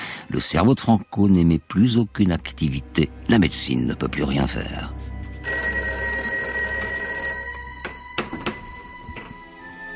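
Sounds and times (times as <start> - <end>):
speech: 0.3 - 5.0
telephone electric bell ringing during a night-time emergency: 5.4 - 8.9.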